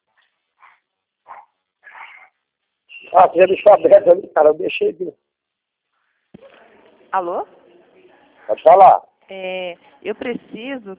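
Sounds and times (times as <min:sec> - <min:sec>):
dog barking and whimpering: 0:00.6 - 0:02.3
speech: 0:03.1 - 0:05.2, 0:07.1 - 0:07.6, 0:08.5 - 0:10.9.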